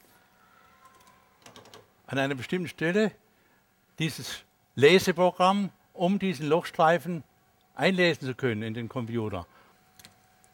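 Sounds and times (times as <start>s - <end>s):
quiet hum: 0.0s - 10.5s
typing on a computer keyboard: 0.8s - 1.8s
speech: 2.1s - 3.2s, 4.0s - 9.6s.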